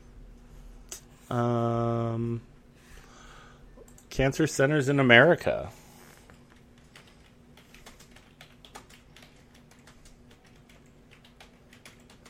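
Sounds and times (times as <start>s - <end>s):
speech: 1.3s - 2.5s, 4.2s - 5.8s
typing on a computer keyboard: 6.6s - 12.2s.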